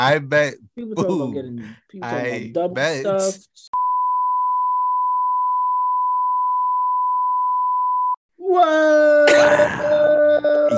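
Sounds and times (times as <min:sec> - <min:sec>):
speech: 0:00.0 - 0:03.8, 0:08.5 - 0:10.7
censor bleep tone: 0:03.8 - 0:08.2.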